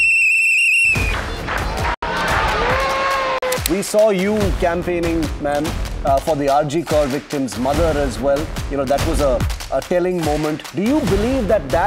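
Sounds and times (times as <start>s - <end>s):
celebratory whistle blast: 0.0s - 1.4s
crowd cheering and shouting: 0.9s - 3.7s
speech: 3.7s - 11.8s.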